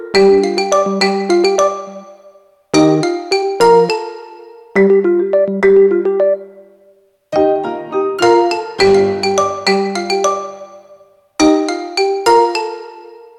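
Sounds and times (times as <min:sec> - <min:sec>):
Yotaphone game ringtone: 0:00.1 - 0:06.5, 0:07.3 - 0:13.3.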